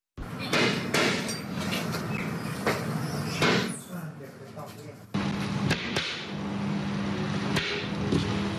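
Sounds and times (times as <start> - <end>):
workshop clatter: 0.2 - 6.4, 7.4 - 8.5
steady hum: 0.2 - 8.5
hammer strikes making a pilot hole: 0.4 - 1.4, 3.4 - 3.8, 5.7 - 6.4, 7.5 - 8.3.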